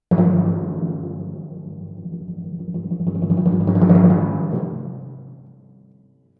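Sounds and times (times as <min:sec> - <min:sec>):
timpani: 0:00.0 - 0:05.6.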